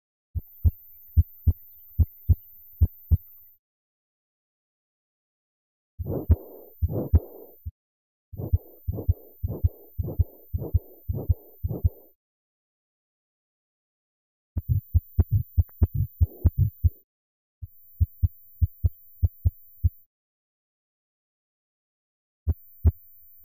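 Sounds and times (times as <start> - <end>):
heartbeat: 0.4 - 3.3, 6.0 - 7.7, 8.4 - 12.2, 14.6 - 17.0, 18.0 - 20.1.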